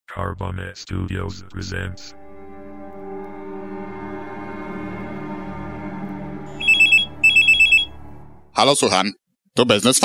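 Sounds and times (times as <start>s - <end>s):
speech: 0.2s - 2.2s, 8.6s - 10.0s
telephone bell ringing in rapid trilling pulses: 6.6s - 8.0s.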